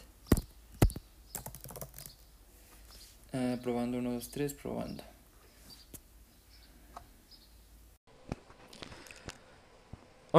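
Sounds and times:
fingers tapping an iPad screen: 0.3 - 2.2
speech: 3.3 - 5.1.

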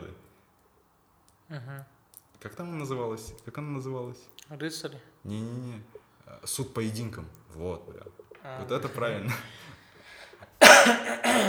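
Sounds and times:
speech: 1.5 - 9.8, 10.8 - 11.4
loud harsh rasping coughs: 10.6 - 11.4.

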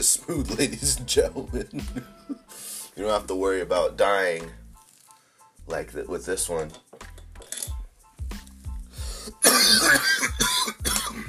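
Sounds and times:
speech: 0.0 - 4.6, 5.7 - 6.8
harsh hacking coughs after a smoke hit: 9.4 - 11.2.

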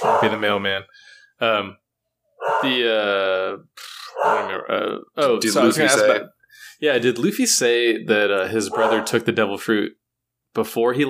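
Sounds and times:
dogs barking and howling: 0.0 - 0.4, 2.4 - 2.8, 4.0 - 4.6, 8.7 - 9.2
speech: 0.1 - 1.8, 2.4 - 10.0, 10.6 - 11.0.

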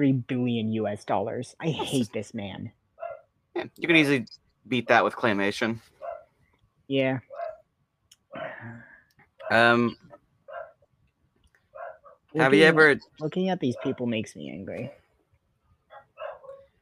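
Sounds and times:
speech: 0.0 - 2.8, 3.6 - 5.9, 6.9 - 7.3, 9.5 - 10.0, 12.4 - 15.0
dogs barking: 3.0 - 3.3, 6.0 - 6.3, 7.3 - 7.6, 9.4 - 10.8, 11.7 - 12.3, 13.7 - 14.0, 15.9 - 16.7.

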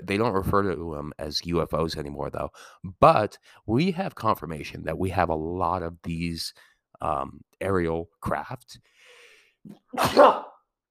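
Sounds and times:
speech: 0.1 - 8.9, 9.6 - 10.5
sharp sneeze with a brief inhale: 9.7 - 10.6.

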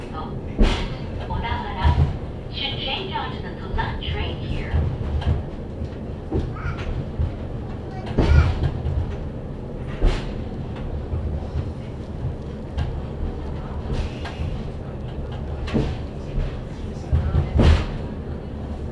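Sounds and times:
faint passenger voices inside railway carriage: 0.0 - 5.0, 6.3 - 8.9, 13.0 - 18.8
Hakone Tozan Railway mountain railway car rumbling on rails: 0.0 - 18.8.

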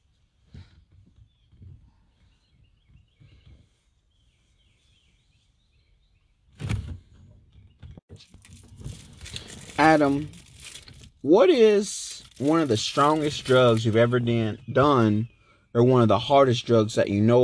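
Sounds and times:
faint birds chirping and twittering outdoors: 0.8 - 8.0, 11.3 - 17.4
loud broadband rustling bursts: 8.2 - 11.2, 11.9 - 14.2
speech: 9.8 - 10.4, 11.2 - 17.4.

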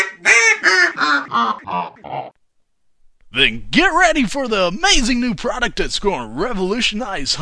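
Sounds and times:
duck call being blown, quacking: 0.0 - 2.1
speech: 3.4 - 7.4.

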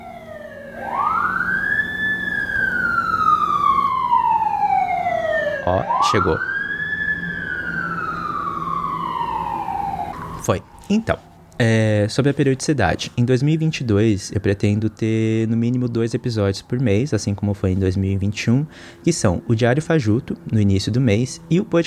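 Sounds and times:
loud wailing ambulance siren sweeping up and down: 0.0 - 21.8
speech: 5.7 - 6.5, 10.4 - 21.8.

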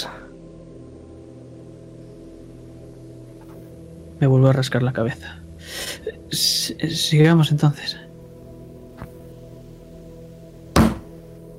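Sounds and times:
low steady hum: 0.0 - 11.5
speech: 4.2 - 8.1
fist pounding on a metal door: 10.8 - 11.1
soft thump: 10.8 - 11.1.

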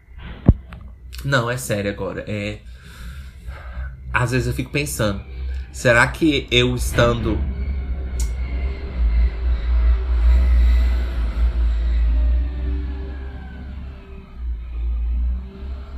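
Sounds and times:
speech: 1.2 - 3.0, 4.2 - 7.5
car passing by outside: 3.0 - 15.9.

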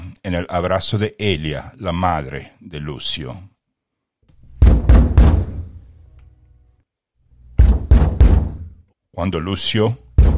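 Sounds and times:
speech: 0.2 - 3.5, 9.2 - 10.0
heavy knocking on a wooden door: 4.6 - 5.6, 7.6 - 8.7, 10.2 - 10.3.

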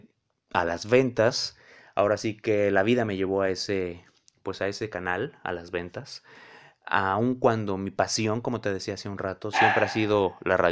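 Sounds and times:
speech: 0.5 - 10.7
dog barking and yipping: 9.5 - 10.2.

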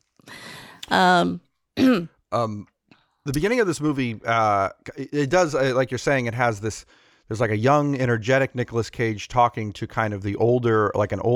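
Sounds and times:
speech: 0.2 - 11.3
short voiced cough-like bursts: 1.8 - 2.5
person clearing throat: 1.8 - 2.6.

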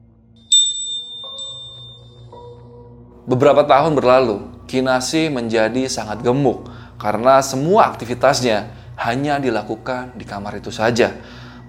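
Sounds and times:
faint low hum: 0.0 - 11.6
small hand bell ringing: 0.5 - 2.3
speech: 3.3 - 11.6.

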